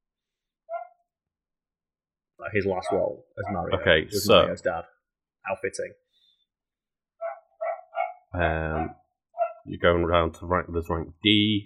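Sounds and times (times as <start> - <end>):
speech: 2.4 - 6.0, 8.3 - 9.0, 9.6 - 11.6
faint dog bark from downstairs: 2.8 - 3.8, 7.2 - 9.6.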